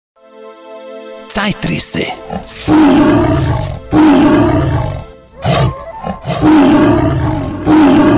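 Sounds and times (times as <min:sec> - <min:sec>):
speech: 0:01.3 - 0:03.7
tiger roaring: 0:02.3 - 0:08.1.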